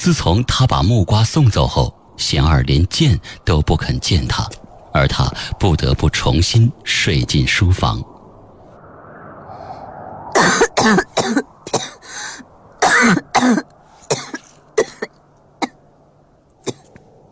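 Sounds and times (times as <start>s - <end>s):
speech: 0.0s - 8.1s, 10.4s - 11.9s, 13.0s - 13.7s
violent coughing fit: 10.4s - 12.0s, 12.8s - 15.8s, 16.7s - 16.9s.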